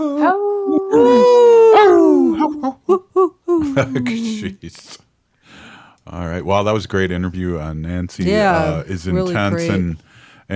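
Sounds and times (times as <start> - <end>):
wolf howling: 0.0 - 2.4
laughter: 2.1 - 4.8
speech: 3.8 - 5.2, 6.1 - 10.5.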